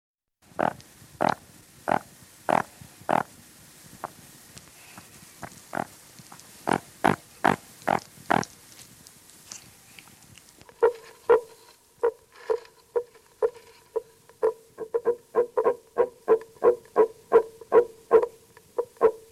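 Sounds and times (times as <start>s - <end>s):
common frog giving rasping and tonal grunting croaks: 0.6s - 3.3s, 5.4s - 6.0s, 6.6s - 8.5s, 10.6s - 19.3s.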